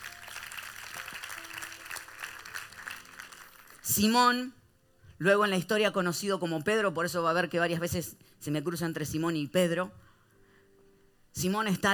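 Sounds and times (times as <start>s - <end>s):
church audience applauding the reading of the word of God: 0.0s - 4.0s
speech: 3.9s - 4.6s, 5.2s - 10.0s, 11.4s - 11.9s.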